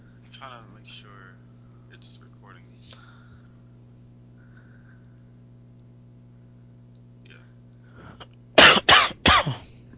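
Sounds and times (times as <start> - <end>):
faint hum: 0.0 - 9.9
speech: 0.4 - 3.2
harsh wet coughs: 8.6 - 9.7.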